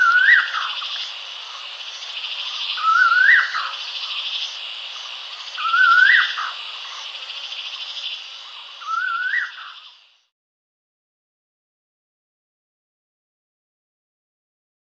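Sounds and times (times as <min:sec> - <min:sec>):
collared laughingthrush whistled call: 0:00.0 - 0:01.1, 0:02.4 - 0:04.2, 0:05.6 - 0:06.6, 0:08.8 - 0:10.0
steady high insect-like hiss: 0:00.0 - 0:10.3.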